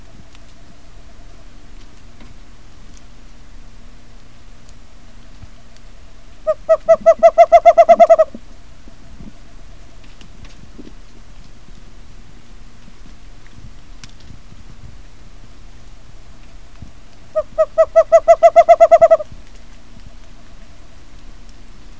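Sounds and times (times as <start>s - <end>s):
western screech owl calling: 6.4s - 9.0s, 17.3s - 19.3s.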